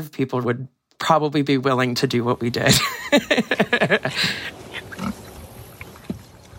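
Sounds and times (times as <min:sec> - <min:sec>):
speech: 0:00.0 - 0:04.6
laughter: 0:02.6 - 0:04.9
pig snorts: 0:04.2 - 0:05.9
pigs grunting and squealing: 0:04.2 - 0:06.1.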